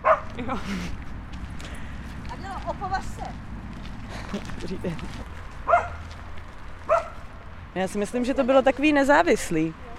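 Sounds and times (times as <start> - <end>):
dog barking sharply: 0.0 - 0.3, 5.6 - 6.1, 6.9 - 7.2
speech: 0.5 - 1.0, 4.3 - 5.9, 7.7 - 9.8.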